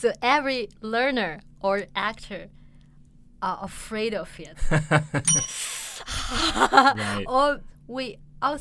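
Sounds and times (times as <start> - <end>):
speech: 0.0 - 2.6, 3.4 - 8.5
improvisation comedy prop bell rung to end a scene: 5.2 - 5.8.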